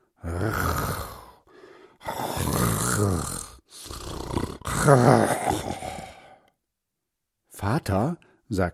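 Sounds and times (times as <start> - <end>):
man snoring loudly while asleep on his back in a bedroom: 0.2 - 6.5
speech: 4.8 - 5.4, 7.6 - 8.7.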